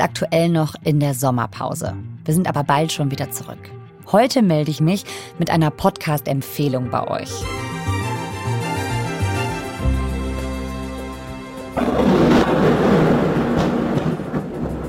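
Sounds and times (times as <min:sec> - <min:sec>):
speech: 0:00.0 - 0:07.7
drone engine buzzing over a city: 0:07.4 - 0:14.7
roaring rush of noise: 0:11.8 - 0:14.8.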